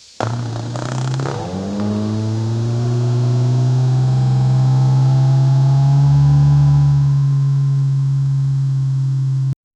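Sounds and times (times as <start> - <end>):
aggressive exhaust popping: 0.0 - 9.6.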